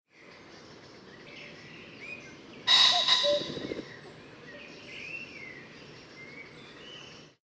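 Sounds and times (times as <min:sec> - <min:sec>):
pheasant calling: 0:02.6 - 0:04.8.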